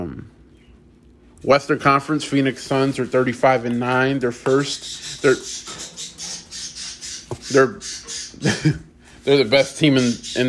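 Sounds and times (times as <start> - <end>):
speech: 1.4 - 5.8, 7.5 - 10.4
bird squawking in a room: 4.4 - 8.6, 9.4 - 10.4.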